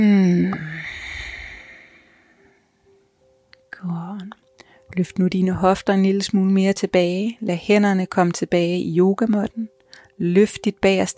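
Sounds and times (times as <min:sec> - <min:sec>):
deep breath in and out during yoga practice: 0:00.6 - 0:02.8
speech: 0:05.0 - 0:11.1.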